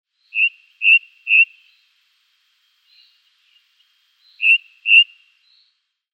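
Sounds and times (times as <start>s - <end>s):
Ring ouzel Turdus torquatus calls: 0.3s - 1.9s, 2.9s - 5.3s.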